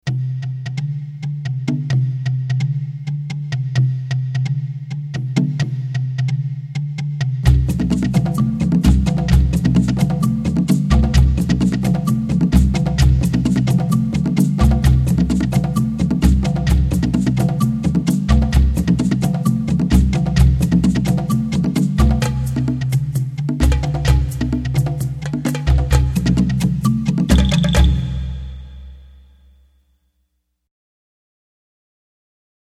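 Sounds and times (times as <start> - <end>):
tribal percussion: 0.0 - 29.7.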